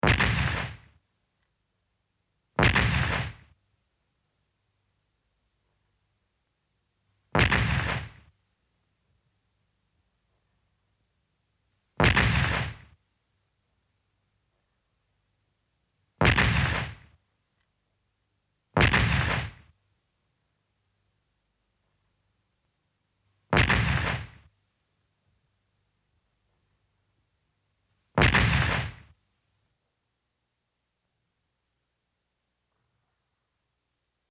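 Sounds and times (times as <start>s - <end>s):
cannon in Japan: 0.0s - 1.0s, 2.6s - 3.6s, 7.4s - 8.3s, 12.0s - 13.0s, 16.2s - 17.2s, 18.8s - 19.8s, 23.5s - 24.5s, 28.2s - 29.2s.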